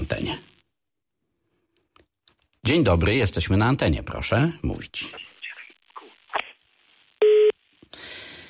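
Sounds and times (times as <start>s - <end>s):
hissy static: 0.0s - 0.8s, 2.6s - 8.0s
speech: 0.1s - 0.5s, 2.6s - 5.3s
telephone busy tone after dropped radio call-in: 7.2s - 7.5s.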